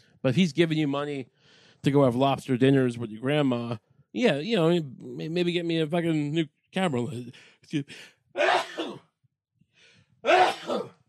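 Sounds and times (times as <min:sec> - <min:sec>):
speech: 0:00.2 - 0:08.6, 0:10.2 - 0:11.0
loud strongly voiced sneezes: 0:08.4 - 0:09.1, 0:10.3 - 0:11.0.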